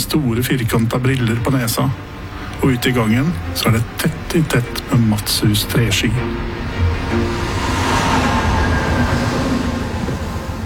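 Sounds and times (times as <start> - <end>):
passenger train rolling along the rails: 0.0 - 10.6
speech: 0.1 - 7.4.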